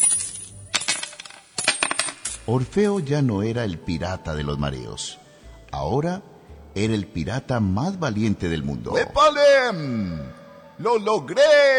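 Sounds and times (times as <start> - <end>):
gold coins clinking and jingling: 0.0 - 3.2
speech: 2.5 - 5.2, 5.8 - 11.7.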